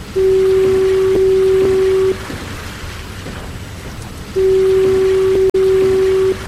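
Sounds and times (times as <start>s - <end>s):
automated electric lighthouse fog signal horn blasts: 0.0s - 2.6s, 4.3s - 6.4s
constant hissing background: 0.0s - 6.4s.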